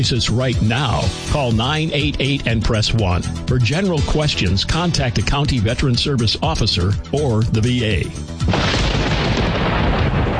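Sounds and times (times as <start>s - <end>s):
speech: 0.0s - 8.8s
loud deep rumble of thunder: 8.5s - 10.3s.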